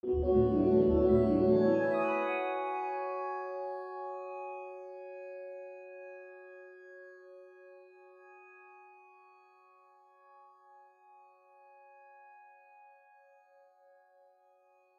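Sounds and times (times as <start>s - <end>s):
G chord played: 0.0s - 3.8s.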